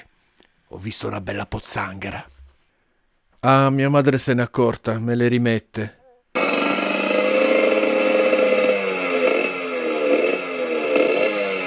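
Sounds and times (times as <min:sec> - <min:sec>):
speech: 0:00.7 - 0:02.4, 0:03.4 - 0:06.0
motorcycle exhaust roaring with revving engine: 0:06.4 - 0:11.6.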